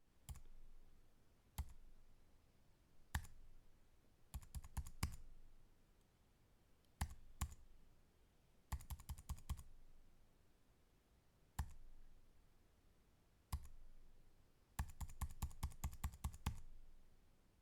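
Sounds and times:
slow typing: 4.3 - 5.2, 7.0 - 7.6, 8.7 - 9.7, 13.6 - 13.8, 14.8 - 16.7.

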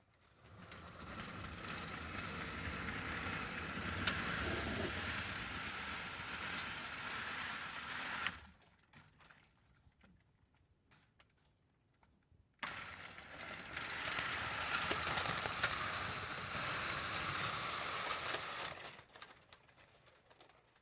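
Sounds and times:
slotted blinds opening and closing: 0.4 - 8.4, 12.7 - 18.8.

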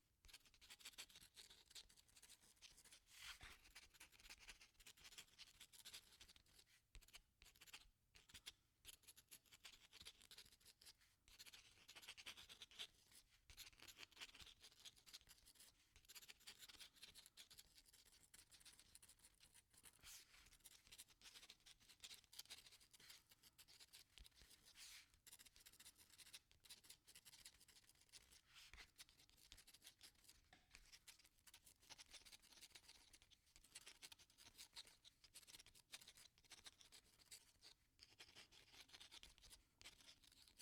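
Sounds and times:
pen writing: 0.3 - 37.2, 38.0 - 40.5.

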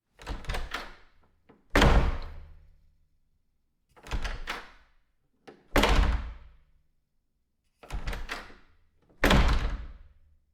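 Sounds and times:
wood door opening and closing: 0.2 - 1.1, 1.7 - 2.6, 4.0 - 4.8, 7.9 - 10.0.

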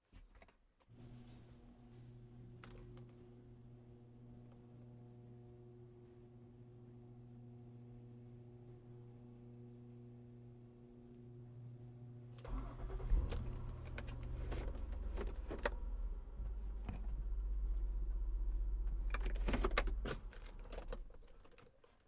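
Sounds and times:
car engine starting: 12.4 - 21.4.

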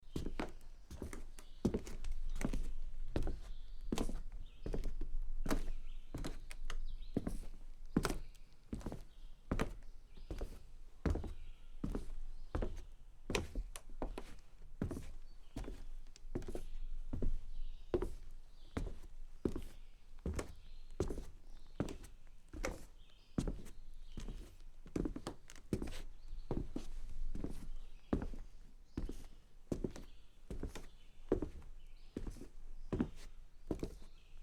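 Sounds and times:
soft soles on a wood porch: 0.2 - 34.1.

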